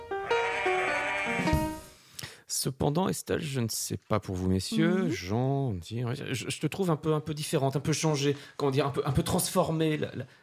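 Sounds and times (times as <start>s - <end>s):
sheep bleating: 0.2s - 1.6s
speech: 2.6s - 10.4s.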